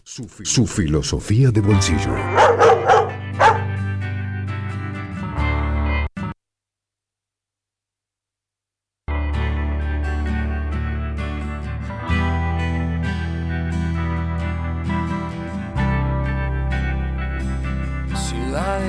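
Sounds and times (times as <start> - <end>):
speech: 0.0 - 3.2
musical backing: 1.5 - 6.1, 9.1 - 18.8
dog barking: 2.3 - 3.8.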